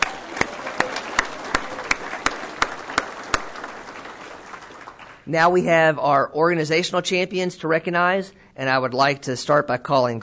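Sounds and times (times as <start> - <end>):
audience applause: 0.0 - 5.3
sharp evenly spaced claps in a steady rhythm: 0.0 - 5.3
speech: 5.3 - 10.2.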